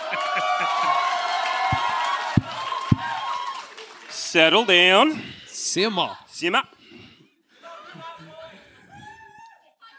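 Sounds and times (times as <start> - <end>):
laughter: 0.0 - 1.2, 7.6 - 9.2
scattered clapping in a dense crowd: 0.0 - 4.8
live audience cheering and whooping: 0.0 - 4.9
speech: 4.4 - 6.7.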